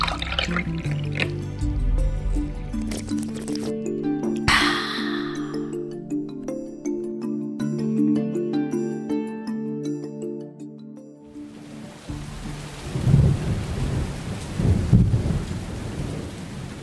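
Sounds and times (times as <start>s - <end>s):
soft sustained music: 0.0s - 14.2s
heavy rain: 11.3s - 16.8s
deep rolls of thunder: 12.7s - 16.8s.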